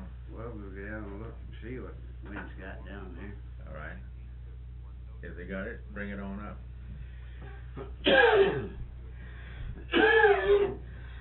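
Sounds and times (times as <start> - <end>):
low hum: 0.0 - 11.2
speech: 0.6 - 4.1, 5.2 - 6.7
person coughing harshly in a coughing fit: 7.8 - 8.8, 9.8 - 10.8.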